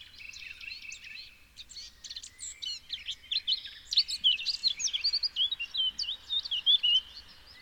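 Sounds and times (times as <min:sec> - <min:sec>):
Eurasian blackcap Sylvia atricapilla singing: 0:00.0 - 0:07.0.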